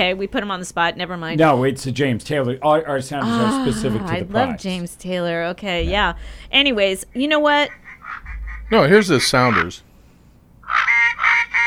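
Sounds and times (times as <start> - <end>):
speech: 0.0 - 7.8, 8.7 - 9.9
nasal duck call sound effect quacking: 7.7 - 9.8, 10.6 - 11.6.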